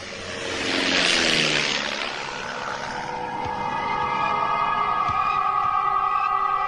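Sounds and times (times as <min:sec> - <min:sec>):
squadron of propeller warplanes flying overhead, staged sound effect: 0:00.0 - 0:06.6.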